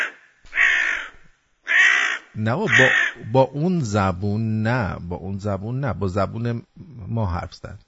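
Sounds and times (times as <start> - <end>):
crow cawing: 0.0 - 3.3
speech: 2.4 - 7.8.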